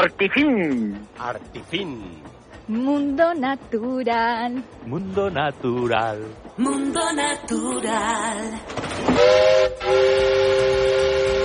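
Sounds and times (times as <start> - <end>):
speech: 0.0 - 11.2
shrill whistle of a new train: 9.0 - 11.4.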